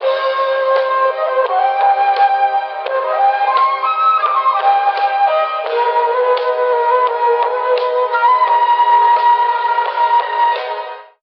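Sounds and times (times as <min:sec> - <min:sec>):
electronic flute loop: 0:00.0 - 0:11.2.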